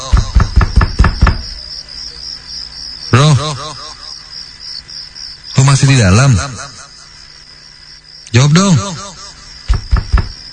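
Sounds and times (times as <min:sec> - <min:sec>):
knocking on a toilet door: 0:00.1 - 0:01.6, 0:09.7 - 0:10.4
speech: 0:05.9 - 0:06.6, 0:08.4 - 0:09.0.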